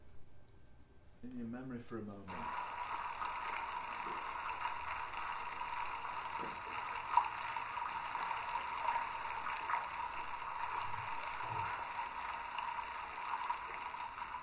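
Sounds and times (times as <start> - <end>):
faint underwater hum in the Pacific Ocean: 0.0 - 14.4
speech: 1.2 - 2.7
low underwater thumps in the Pacific Ocean: 10.3 - 11.9.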